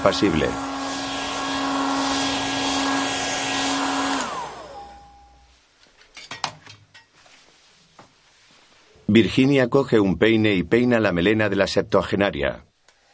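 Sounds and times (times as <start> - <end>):
speech: 0.0 - 0.7, 9.1 - 12.7
hair dryer drying a woman's hair after a bath: 0.0 - 5.3.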